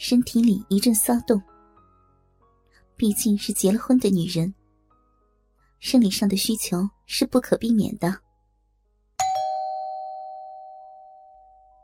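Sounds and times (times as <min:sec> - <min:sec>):
speech: 0:00.0 - 0:01.5, 0:03.0 - 0:04.6, 0:05.8 - 0:08.2
doorbell chiming: 0:09.2 - 0:11.8.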